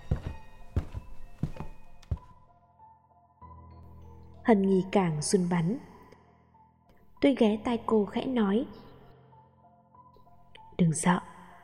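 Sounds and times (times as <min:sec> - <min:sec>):
heavy thudding footsteps approaching a door: 0:00.0 - 0:02.4
speech: 0:04.5 - 0:05.9, 0:07.2 - 0:08.9, 0:10.8 - 0:11.3.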